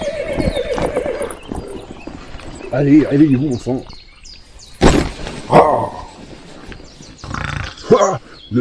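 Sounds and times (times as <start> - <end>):
horse whinnying: 0.0 - 1.9
horse hooves clopping on hard ground: 0.0 - 4.1
speech: 2.7 - 4.0, 8.0 - 8.6.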